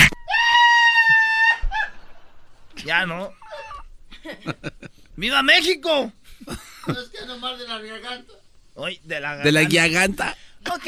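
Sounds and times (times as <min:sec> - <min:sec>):
person screaming loudly: 0:00.0 - 0:01.9
brief shorter cry: 0:00.0 - 0:02.0
speech: 0:02.9 - 0:03.4, 0:04.2 - 0:10.8.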